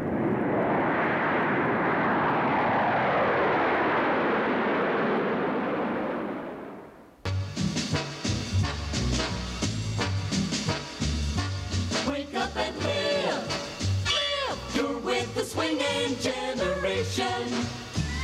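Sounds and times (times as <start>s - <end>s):
Boeing 707A jet airliner engines roaring: 0.0s - 6.8s
music: 7.2s - 18.2s.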